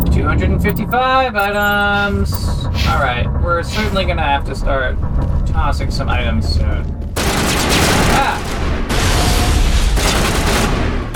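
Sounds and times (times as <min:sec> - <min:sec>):
speech: 0:00.2 - 0:08.6
rapid gunfire in a video game: 0:07.2 - 0:11.1.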